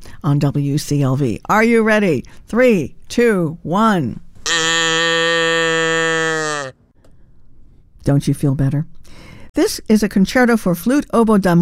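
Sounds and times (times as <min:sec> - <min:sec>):
speech: 0:00.2 - 0:04.2, 0:08.0 - 0:11.6
cow mooing: 0:04.5 - 0:06.7.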